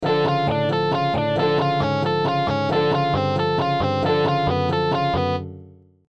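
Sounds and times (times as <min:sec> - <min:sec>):
arpeggio bass: 0:00.0 - 0:05.7.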